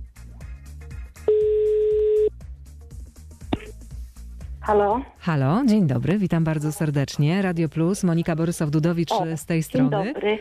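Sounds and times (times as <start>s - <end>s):
telephone ringback tone while placing a call: 1.3s - 2.3s
speech: 4.7s - 10.4s.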